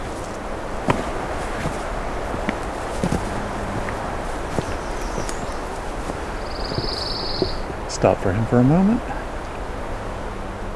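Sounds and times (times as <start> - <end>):
soft thumps and clicks: 0.0 - 7.8
constant outdoor hiss: 0.0 - 10.7
pine warbler trilling: 3.3 - 7.8
speech: 8.0 - 9.2.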